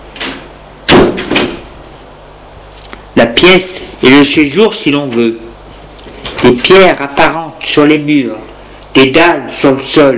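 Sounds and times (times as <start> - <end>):
door swinging shut with a solid thud: 0.2 - 1.7
speech: 3.2 - 5.5, 6.4 - 10.1.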